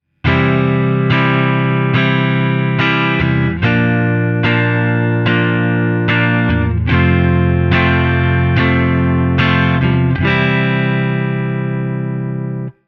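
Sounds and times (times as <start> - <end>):
guitar chord: 0.2 - 12.8.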